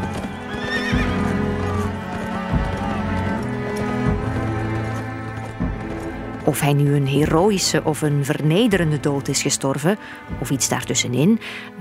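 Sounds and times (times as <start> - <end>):
heavy horse hooves clip-clopping: 0.0 - 9.6
horse whinnying and neighing: 0.4 - 1.9
speech: 6.5 - 11.7.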